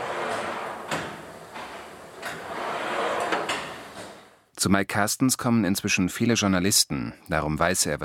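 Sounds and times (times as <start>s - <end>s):
offset press print table sliding back and forth in a graphics workshop: 0.0s - 4.4s
speech: 4.6s - 8.0s.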